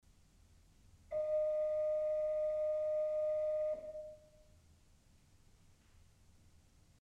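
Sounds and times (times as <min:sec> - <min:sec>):
four-foot principal organ pipes: 0:01.2 - 0:04.2.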